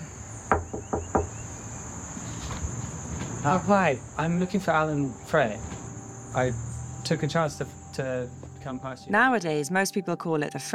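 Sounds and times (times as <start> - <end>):
insect or cricket drone: 0.0 - 9.0
knocking on a front door: 0.5 - 1.4
speech: 3.4 - 5.7, 6.3 - 10.7.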